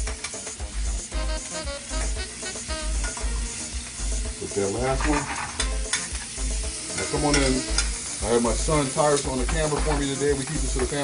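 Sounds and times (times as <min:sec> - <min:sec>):
food sizzling in a skillet after a flip: 0:00.0 - 0:11.0
speech: 0:04.5 - 0:05.4, 0:07.1 - 0:11.0.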